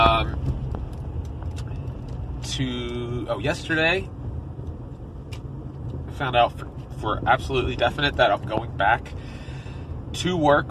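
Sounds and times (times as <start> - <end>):
heavy engine rumble of a garbage truck driving: 0.0 - 10.6
speech: 2.6 - 4.2, 6.2 - 9.3, 10.1 - 10.6.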